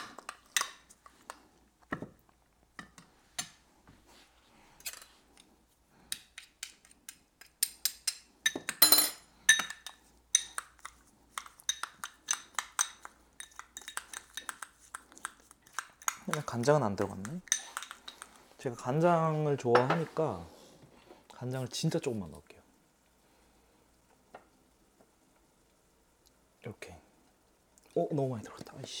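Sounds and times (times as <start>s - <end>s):
utensils clinking, tapping and scraping against a bowl mixing food with perilla oil: 7.6s - 18.4s
speech: 16.4s - 17.5s, 18.6s - 20.6s, 21.4s - 22.5s.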